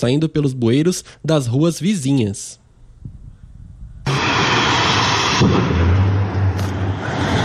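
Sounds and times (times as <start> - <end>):
speech: 0.0 - 2.6
big fire roaring at industrial blaze: 3.8 - 7.4
explosion at industrial blaze: 4.0 - 7.4.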